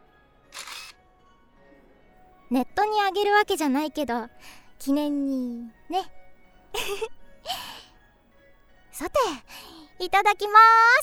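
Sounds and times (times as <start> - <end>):
camera shutter photographing cakes: 0.5 - 1.0
speech: 2.5 - 7.7, 9.0 - 11.0.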